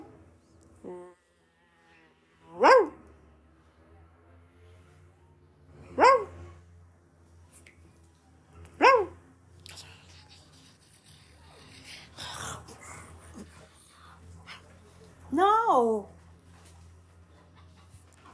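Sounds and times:
female dog barking on command: 2.6s - 3.0s, 5.9s - 6.4s, 8.8s - 9.2s
speech: 15.7s - 16.1s.

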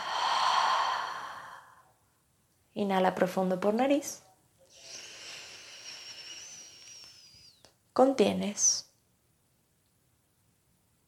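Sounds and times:
slow exhale through the mouth: 0.0s - 1.9s, 4.7s - 7.6s
speech: 2.8s - 4.3s, 8.0s - 8.9s.

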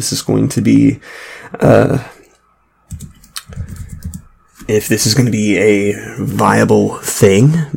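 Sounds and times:
speech: 0.0s - 2.2s, 4.7s - 7.7s
typing a search on a computer keyboard: 2.9s - 4.8s.

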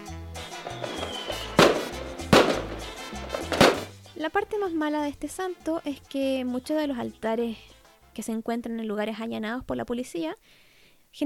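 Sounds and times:
fireworks bangs: 0.6s - 3.9s
faint rising fireworks whistle: 0.8s - 1.6s
speech: 4.2s - 11.2s.

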